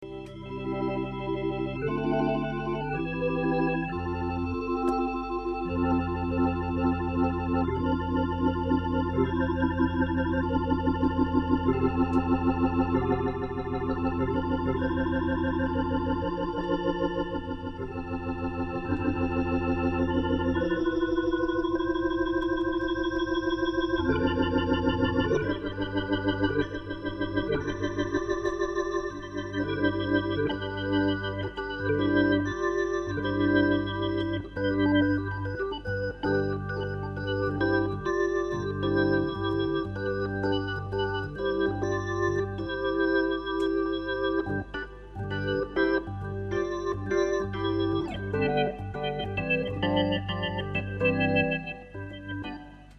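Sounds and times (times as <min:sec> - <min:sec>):
Hammond T-522 tone-wheel organ through internal Leslie speaker at fast and slow speed: 0:00.0 - 0:52.9.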